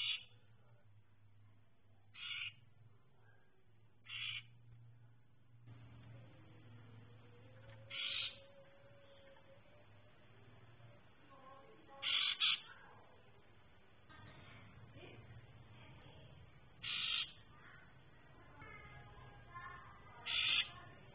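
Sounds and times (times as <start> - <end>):
orange-headed thrush calling with harsh rasping notes: 0.0 - 0.4, 2.1 - 2.6, 4.0 - 4.6, 7.5 - 9.8, 11.9 - 12.8, 16.8 - 17.8, 20.1 - 21.0.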